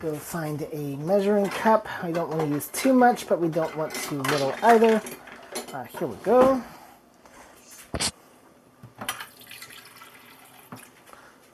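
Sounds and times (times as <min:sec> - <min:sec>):
speech: 0:00.0 - 0:06.8
water running from a tap into a mixture: 0:09.1 - 0:11.0.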